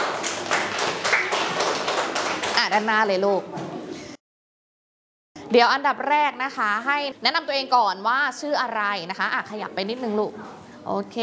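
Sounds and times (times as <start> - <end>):
students clapping for a classmate: 0.0 - 3.0
speech: 2.7 - 3.7, 5.5 - 11.2.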